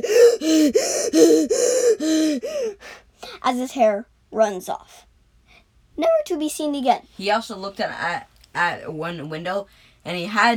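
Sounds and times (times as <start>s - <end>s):
voice imitating someone gasping for breath after running: 0.0s - 3.4s
speech: 0.0s - 5.1s, 6.0s - 10.5s.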